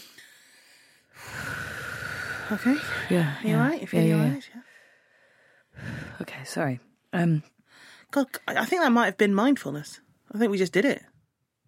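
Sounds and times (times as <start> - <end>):
deep calming breath during a childbirth-style breathing exercise: 0.0 - 3.5, 4.6 - 6.4, 7.7 - 8.1
speech: 2.5 - 4.7, 5.8 - 11.1.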